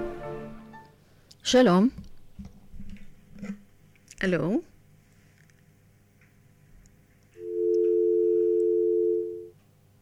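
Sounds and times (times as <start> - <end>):
speech: 1.5 - 2.0, 4.2 - 4.7
telephone tone after a disconnected call: 7.4 - 9.5.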